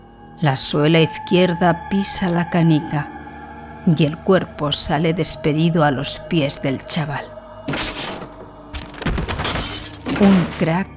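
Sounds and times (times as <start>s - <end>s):
speech: 0.4s - 3.2s, 3.8s - 7.8s, 10.2s - 10.9s
glass shattering as a tray falls to the floor: 7.7s - 10.8s
breaking and clattering of a fallen tray: 7.7s - 10.9s.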